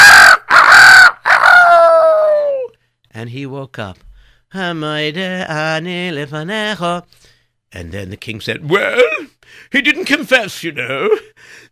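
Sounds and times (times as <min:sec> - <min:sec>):
rooster crowing: 0:00.0 - 0:02.7
speech: 0:03.2 - 0:11.7.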